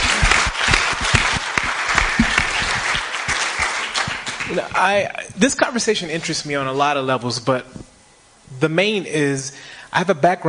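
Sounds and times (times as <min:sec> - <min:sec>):
panel event audience applauding: 0:00.0 - 0:05.0
speech: 0:04.8 - 0:07.9, 0:08.6 - 0:10.4.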